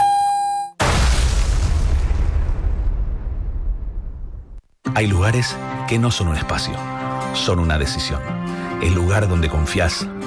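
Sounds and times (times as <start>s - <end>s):
bomb explosion boom: 0.8s - 4.6s
speech: 5.0s - 10.2s.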